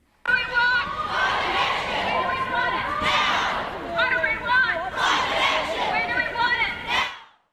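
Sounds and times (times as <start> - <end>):
large protest crowd chanting and cheering in unison: 0.3 - 7.5.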